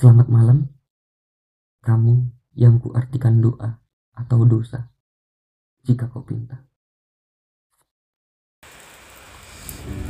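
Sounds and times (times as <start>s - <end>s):
speech: 0.0s - 0.8s, 1.8s - 4.9s, 5.8s - 6.7s
steady rain falling on a surface at night: 8.6s - 10.0s.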